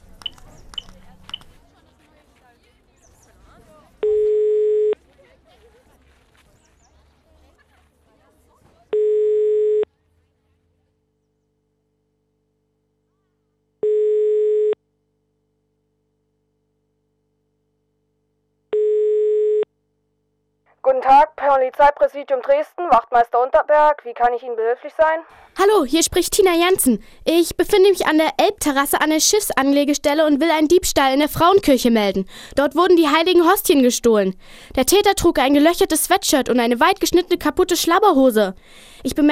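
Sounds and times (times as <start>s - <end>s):
mobile phone ringing tone: 4.0s - 5.0s, 8.9s - 9.9s, 13.8s - 14.8s, 18.7s - 19.7s
speech: 20.9s - 39.3s.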